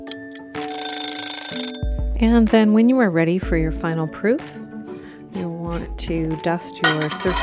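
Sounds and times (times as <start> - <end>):
mechanical kitchen timer ticking and clicking: 0.7 - 2.0
speech: 2.2 - 4.6, 6.1 - 7.4.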